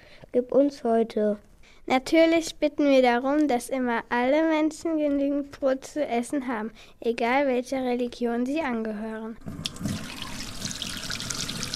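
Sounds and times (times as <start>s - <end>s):
speech: 0.3s - 9.9s
tap water running while washing hands before cooking: 9.4s - 11.7s.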